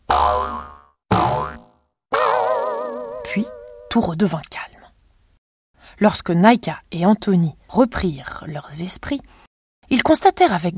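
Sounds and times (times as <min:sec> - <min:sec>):
cartoon boings of bouncing: 0:00.1 - 0:03.9
speech: 0:03.4 - 0:04.7, 0:06.0 - 0:10.7.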